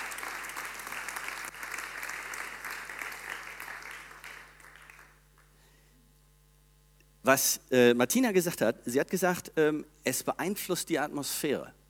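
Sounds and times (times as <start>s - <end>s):
audience applause: 0.0s - 5.2s
speech: 7.2s - 11.8s.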